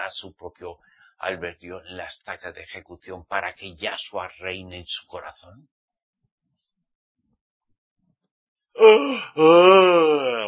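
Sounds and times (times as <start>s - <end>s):
speech: 0.1s - 5.8s, 8.8s - 10.4s
person yawning loudly with a voiced groan: 8.8s - 10.4s.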